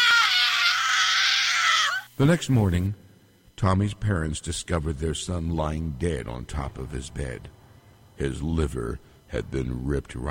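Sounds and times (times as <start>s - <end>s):
boy screaming in terror: 0.0s - 2.1s
speech: 2.2s - 3.0s, 3.6s - 7.6s, 8.2s - 10.2s.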